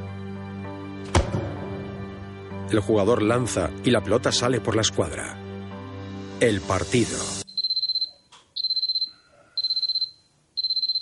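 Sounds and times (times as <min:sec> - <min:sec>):
speech: 0:02.7 - 0:05.4, 0:06.4 - 0:07.4
electronic alarm clock beeping: 0:07.5 - 0:11.0.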